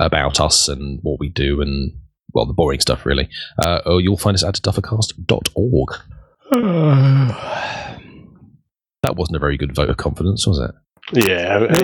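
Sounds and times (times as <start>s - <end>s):
speech: 0.0s - 7.9s, 9.0s - 11.8s
person yawning: 6.5s - 8.4s.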